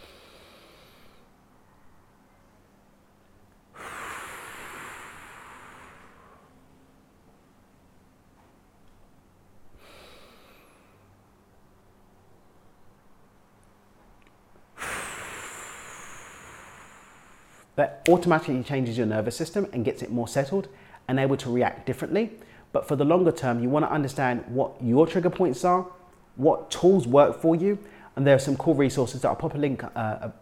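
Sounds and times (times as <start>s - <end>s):
slow deep breathing in through nose, out through mouth: 0.0s - 1.4s, 3.7s - 6.7s, 9.7s - 11.2s, 14.8s - 17.8s, 22.4s - 22.7s, 27.8s - 28.2s
speech: 17.8s - 30.4s.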